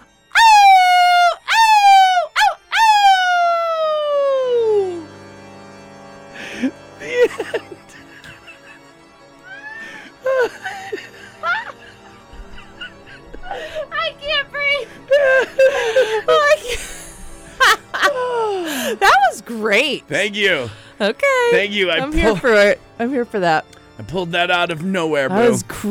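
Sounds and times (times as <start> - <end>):
person imitating a wolf howling: 0.4 - 5.1
laughter: 6.6 - 8.9, 9.5 - 13.9, 15.1 - 18.9
speech: 20.0 - 25.8.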